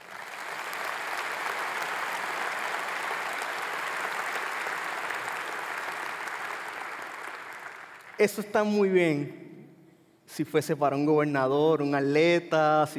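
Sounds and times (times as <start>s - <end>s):
large audience applauding: 0.0s - 8.5s
speech: 8.2s - 9.4s, 10.4s - 12.9s.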